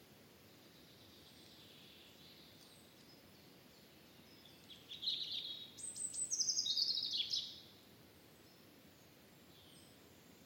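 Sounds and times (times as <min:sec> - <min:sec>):
European robin singing: 0:00.8 - 0:07.6.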